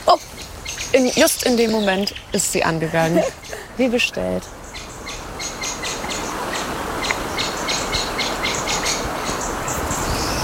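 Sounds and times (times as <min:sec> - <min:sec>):
birds singing outdoors in quick high chirps and trills: 0:00.0 - 0:10.4
speech: 0:00.1 - 0:04.6.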